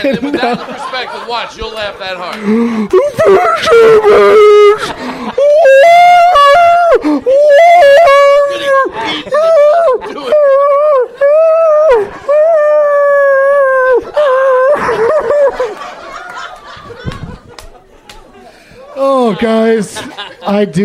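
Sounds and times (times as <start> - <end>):
speech: 0.0 - 6.0, 7.0 - 12.4, 19.0 - 20.8
laughter: 0.0 - 20.8
dog howling and whimpering: 5.6 - 14.8.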